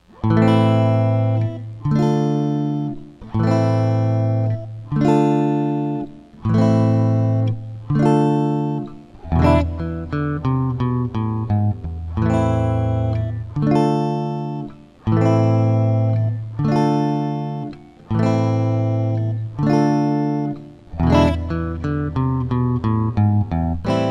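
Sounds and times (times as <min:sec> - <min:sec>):
open chords playing: 0:00.1 - 0:24.0.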